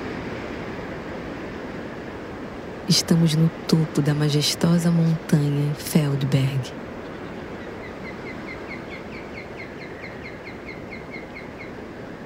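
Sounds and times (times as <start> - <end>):
wind-like rushing noise: 0.0 - 12.2
speech: 2.9 - 6.9
osprey calling above the misty Feldberg mountain summit: 3.0 - 11.8.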